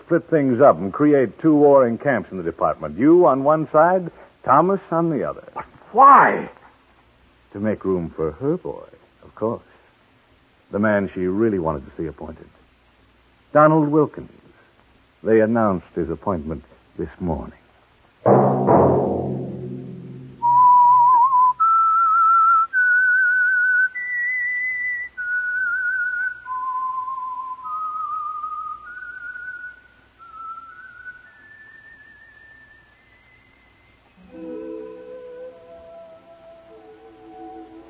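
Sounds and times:
speech: 0.1s - 6.6s, 7.5s - 9.7s, 10.7s - 12.6s, 13.5s - 14.4s, 15.2s - 17.6s
instruments playing: 18.3s - 21.0s, 34.2s - 37.8s
short burst of music: 18.3s - 21.2s, 34.2s - 37.8s
person whistling a radio program theme melody: 20.4s - 37.8s.

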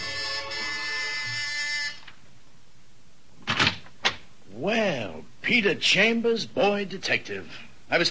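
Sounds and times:
harsh steady electric door buzzer at a house: 0.0s - 2.1s
speech: 4.6s - 8.0s.

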